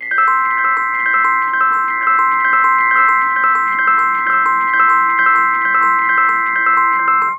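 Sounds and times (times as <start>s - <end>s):
Rhodes electric piano loop with flutter in C major at 130 bpm: 0.0s - 7.3s.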